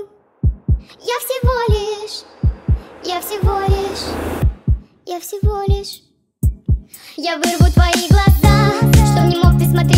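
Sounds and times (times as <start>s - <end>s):
heartbeat thumping in deep double beats: 0.4s - 6.9s
speech: 0.8s - 2.4s, 3.0s - 4.4s, 5.1s - 6.1s, 7.1s - 9.9s.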